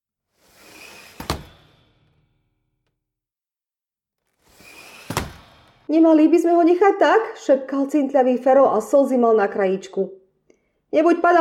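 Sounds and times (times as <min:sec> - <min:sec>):
door creaking as it swings: 0:00.4 - 0:03.0, 0:04.3 - 0:05.9
door banging shut: 0:01.0 - 0:02.1, 0:04.7 - 0:05.9
speech: 0:05.9 - 0:10.2, 0:10.9 - 0:11.3.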